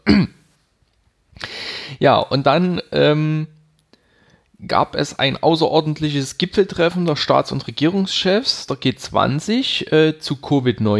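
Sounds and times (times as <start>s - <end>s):
forceful cough-like throat clearing: 0.0s - 0.6s
speech: 2.0s - 3.6s, 4.6s - 10.9s.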